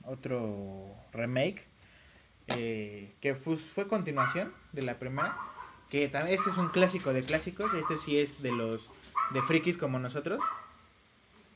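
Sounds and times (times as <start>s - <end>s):
speech: 0.1s - 1.8s, 2.5s - 10.6s
dog barking and yipping: 4.2s - 4.6s, 5.2s - 9.7s, 10.4s - 10.8s.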